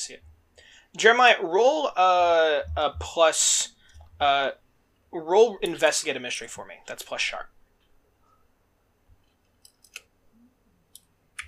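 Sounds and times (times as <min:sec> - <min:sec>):
speech: 0:00.0 - 0:00.3, 0:00.9 - 0:07.5
faint hush: 0:00.0 - 0:11.4
computer keyboard clicks: 0:09.6 - 0:10.1, 0:10.9 - 0:11.4.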